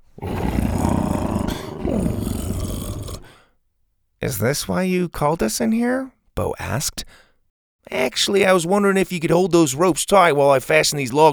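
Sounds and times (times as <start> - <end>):
large animal purring as its head is rubbed: 0.2 - 3.4
speech: 4.2 - 7.2, 7.9 - 11.3.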